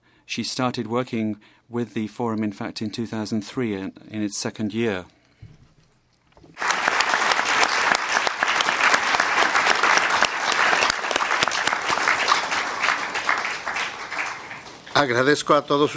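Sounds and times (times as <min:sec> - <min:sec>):
speech: 0:00.3 - 0:05.2, 0:15.0 - 0:15.9
audience applause at a United Nations Permanent Forum session: 0:06.6 - 0:15.3.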